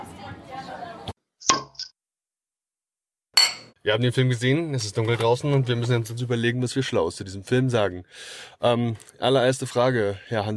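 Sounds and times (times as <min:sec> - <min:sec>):
glasses clinking in a toast in a cinema hall: 0:03.4 - 0:03.8
speech: 0:03.8 - 0:10.5.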